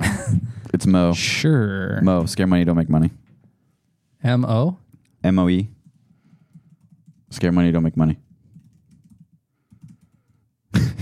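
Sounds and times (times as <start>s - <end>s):
speech: 0.7s - 3.2s, 4.2s - 5.8s, 7.3s - 8.2s
typing on a computer keyboard: 5.8s - 7.3s, 8.2s - 10.4s.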